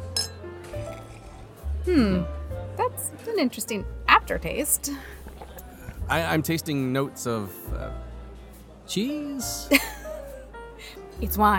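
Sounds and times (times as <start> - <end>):
wine glasses clinking in a toast: 0.0 - 1.1
speech: 1.8 - 2.4, 3.3 - 5.2, 6.1 - 8.1, 8.9 - 9.9, 10.9 - 11.5.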